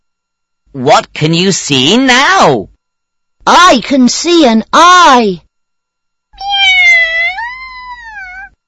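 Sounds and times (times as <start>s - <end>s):
speech: 0.7s - 2.7s, 3.5s - 5.5s
cat meowing: 6.4s - 8.6s.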